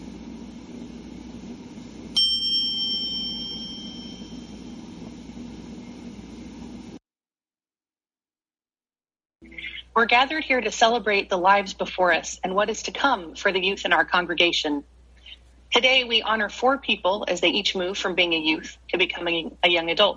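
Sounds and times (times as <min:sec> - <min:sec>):
single bright chime struck and ringing: 0:02.2 - 0:04.5
speech: 0:10.0 - 0:14.9, 0:15.7 - 0:20.1.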